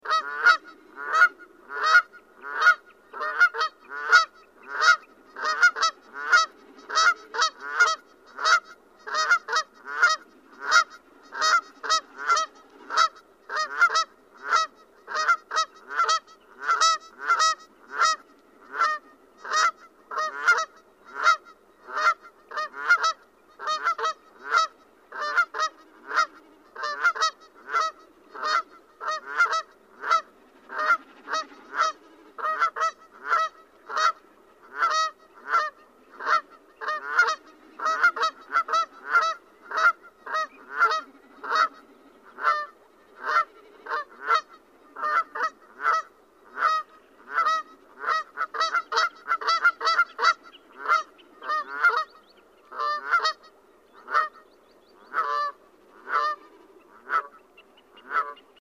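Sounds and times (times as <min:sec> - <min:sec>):
Canada goose Branta canadensis calling: 0:00.0 - 0:58.5.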